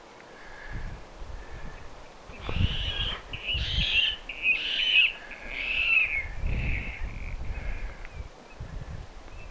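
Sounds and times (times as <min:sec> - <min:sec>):
spotted crake calling: 0:02.3 - 0:07.8.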